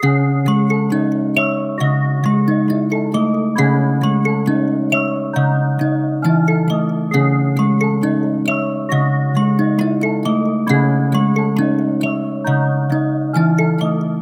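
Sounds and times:
dark melody loop in A sharp minor: 0.0 - 14.2.

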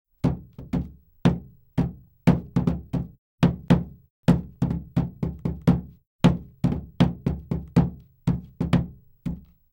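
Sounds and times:
hands banging on dashboard: 0.2 - 9.5.

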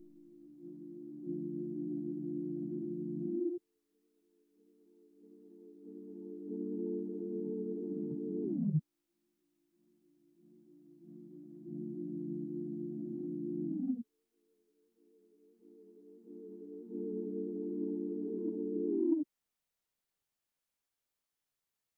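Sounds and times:
D minor sine synth melody loop: 0.3 - 3.6, 5.6 - 8.8, 10.8 - 14.0, 16.0 - 19.2.

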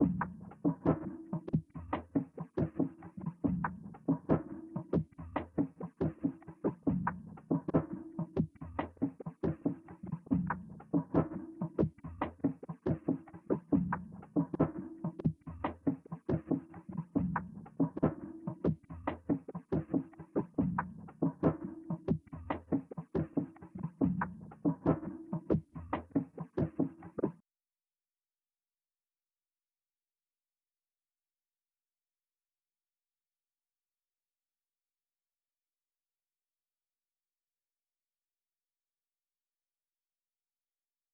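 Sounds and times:
trap percussion loop in B minor at 140 BPM: 0.0 - 27.4.

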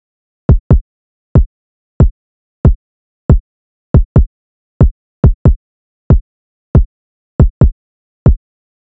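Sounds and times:
hip hop drum loop with kick: 0.5 - 0.8, 3.3 - 4.3, 6.1 - 6.9, 7.5 - 8.4.

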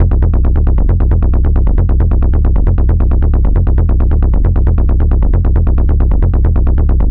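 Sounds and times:
techno bass loop in F at 135: 0.0 - 7.0.

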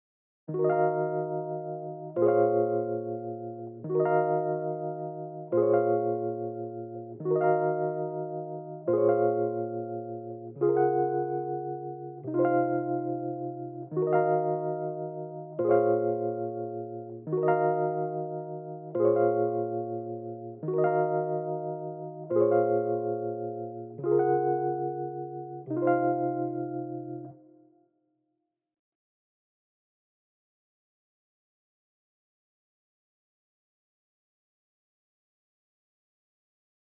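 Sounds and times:
Rhodes piano hip hop melody loop in A sharp minor: 0.5 - 27.4.

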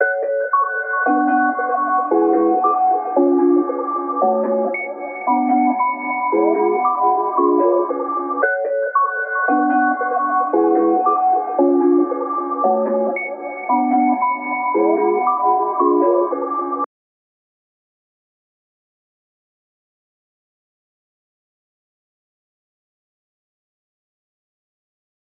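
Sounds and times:
warbling piano trap melody loop in F sharp minor: 1.1 - 16.8.

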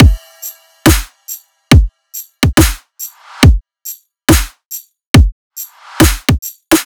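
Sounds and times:
full riddim drum loop: 0.0 - 3.6, 5.2 - 6.8.

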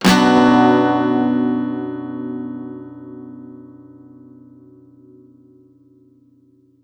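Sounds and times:
guitar one-shot in B minor: 0.0 - 4.3.

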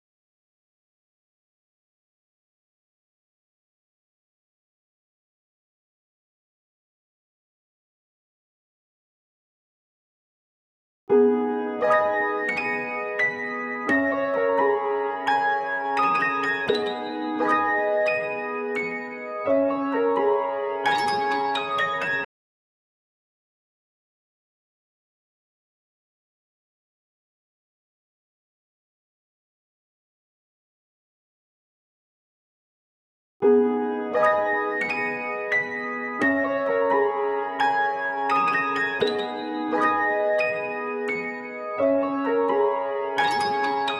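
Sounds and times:
high piano in G sharp minor: 11.1 - 22.3, 33.4 - 43.9.

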